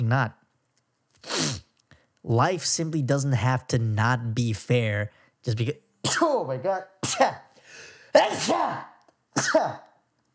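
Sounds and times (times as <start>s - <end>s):
speech: 0.1s - 0.4s, 2.2s - 9.8s
person sneezing: 1.2s - 1.7s, 7.0s - 9.9s
soft breathy intake: 1.2s - 2.0s, 7.5s - 8.2s.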